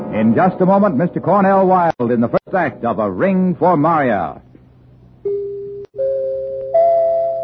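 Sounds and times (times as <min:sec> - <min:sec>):
speech: 0:00.3 - 0:04.5
sustained ringing chime tones rising in pitch: 0:05.3 - 0:07.4.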